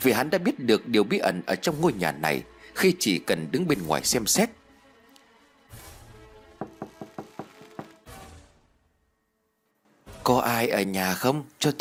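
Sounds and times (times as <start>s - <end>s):
speech: 0.0s - 4.6s, 10.2s - 11.7s
sharp knocks on a door at night: 6.6s - 8.0s.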